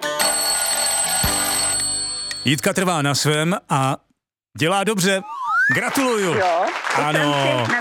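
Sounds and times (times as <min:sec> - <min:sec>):
electric bell ringing to end the time limit: 0:00.1 - 0:02.7
bright tonal jingle: 0:00.2 - 0:02.7
speech: 0:02.4 - 0:07.7.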